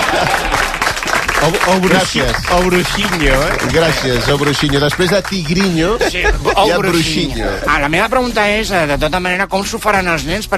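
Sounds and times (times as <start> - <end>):
dense steady applause: 0.0 - 6.0
laughter: 0.0 - 7.7
speech: 1.4 - 10.5.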